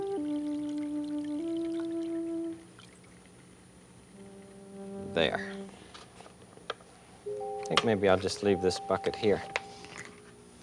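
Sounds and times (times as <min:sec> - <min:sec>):
small amount of water poured in for a pet fish: 0:00.0 - 0:03.6
speech: 0:05.2 - 0:05.6, 0:07.7 - 0:09.6.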